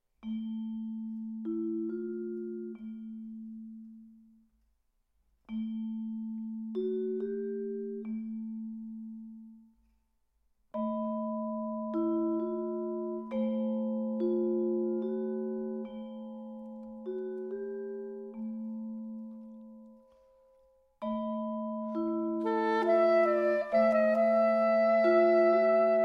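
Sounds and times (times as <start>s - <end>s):
percussion playing andante moderato: 0.0s - 26.0s
saxophone playing andante moderato: 22.4s - 26.0s.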